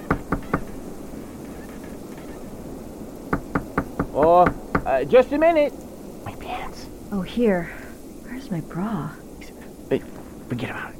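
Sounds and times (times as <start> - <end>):
steady wind-like hiss: 0.0 - 10.9
knocking on an ice house door on a snowy frozen lake: 0.1 - 0.8, 3.3 - 4.9
speech: 4.2 - 5.8, 7.1 - 7.8, 8.5 - 9.2, 9.9 - 10.9.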